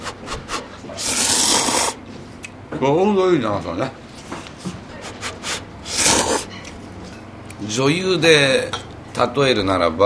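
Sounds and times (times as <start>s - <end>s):
slurping extra-thin curly ramen noodles: 1.0s - 2.0s, 5.5s - 6.5s
speech: 2.7s - 4.0s, 7.6s - 10.0s.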